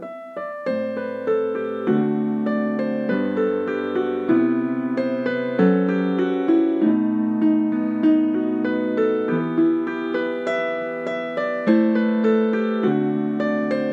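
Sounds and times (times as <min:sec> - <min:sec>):
mini piano: 0:00.0 - 0:13.9.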